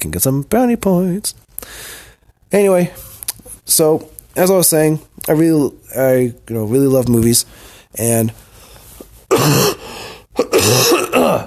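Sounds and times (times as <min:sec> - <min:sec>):
speech: 0:00.0 - 0:03.1, 0:03.7 - 0:08.4, 0:09.3 - 0:09.8, 0:10.4 - 0:11.4
harsh rough coughing: 0:09.3 - 0:11.4.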